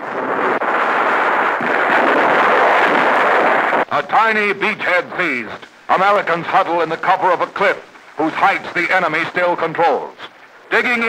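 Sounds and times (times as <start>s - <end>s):
gunfire during a beach landing under fire: 0.2s - 3.9s
navy shells exploding during a beach landing: 0.2s - 8.9s
speech: 4.0s - 11.0s.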